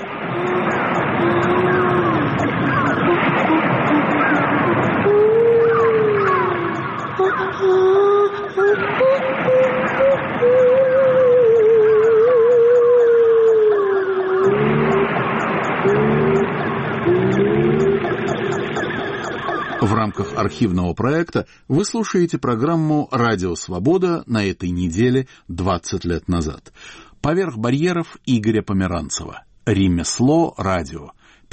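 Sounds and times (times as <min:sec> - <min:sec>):
long sliding whale-like moans in a radio-art collage: 0:00.0 - 0:18.9
speech: 0:20.6 - 0:31.5.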